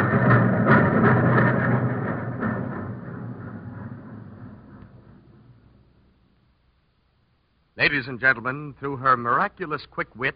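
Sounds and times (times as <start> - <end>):
fast passenger train roaring by with rumbling clatter: 0.0 - 5.9
speech: 7.9 - 10.3.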